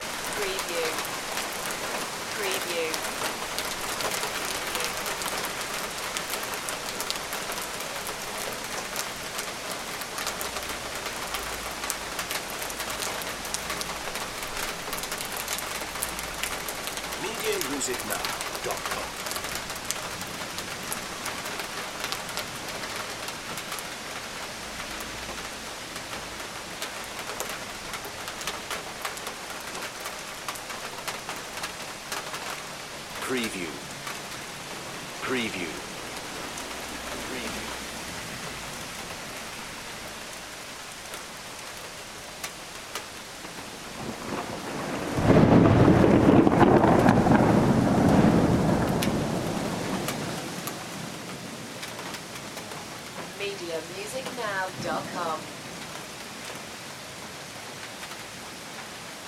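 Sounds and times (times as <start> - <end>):
heavy rain in a backyard: 0.0 - 59.2.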